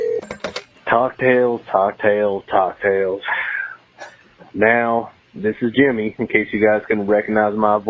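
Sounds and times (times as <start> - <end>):
telephone ringing in loud buzzy bursts: 0.0 - 0.6
speech: 0.9 - 3.4, 4.5 - 7.8.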